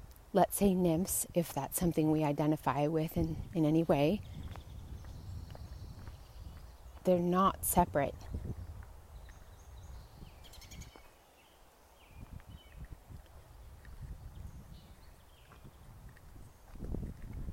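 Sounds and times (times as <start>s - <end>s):
speech: 0.3s - 4.4s, 7.1s - 8.6s
birds chirping outdoors in June in the Northern Hemisphere: 2.7s - 12.9s, 13.6s - 16.7s.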